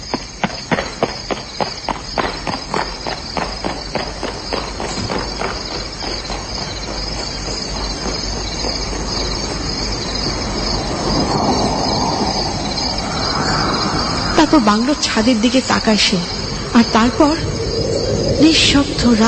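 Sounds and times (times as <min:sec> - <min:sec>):
quick rhythmic footsteps: 0:00.0 - 0:10.9
crickets chirping at night outside a bungalow: 0:00.0 - 0:19.2
speech: 0:14.5 - 0:17.6, 0:18.4 - 0:19.2.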